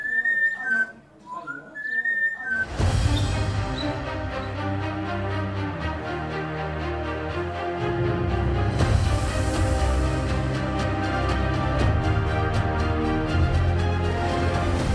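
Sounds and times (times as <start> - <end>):
parrot whistling after sipping red wine: 0.0 - 4.0
loud instrumental music: 2.8 - 14.9.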